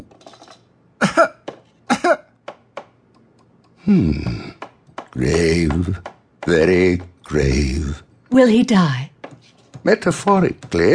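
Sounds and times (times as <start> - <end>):
breathy throaty cough or wheeze: 1.0 - 2.3
speech: 1.2 - 1.4, 3.9 - 4.4, 5.2 - 9.1, 9.8 - 10.9.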